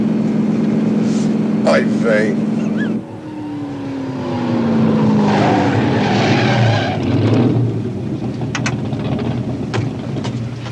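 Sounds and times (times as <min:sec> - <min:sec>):
red Ferrari engine roaring as cars slow and pull over: 0:00.0 - 0:10.7
speech: 0:01.7 - 0:02.5.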